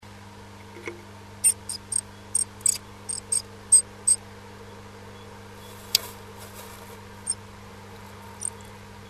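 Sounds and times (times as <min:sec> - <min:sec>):
low electrical hum: 0:00.0 - 0:09.0
bird calling with high thin ticks in a nest box: 0:01.4 - 0:04.2.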